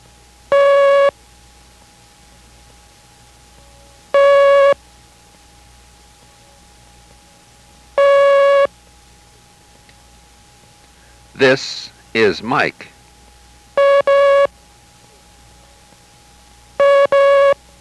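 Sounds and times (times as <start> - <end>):
Morse code letter T as long steady mid-pitch tones: 0.5 - 1.1, 4.2 - 4.8, 8.0 - 8.7, 13.8 - 14.5, 16.8 - 17.6
speech: 11.4 - 12.9.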